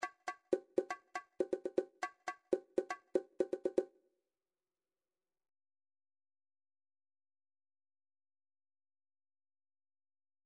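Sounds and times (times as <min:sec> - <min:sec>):
individual MIDI bongo drum hits: 0:00.0 - 0:03.9.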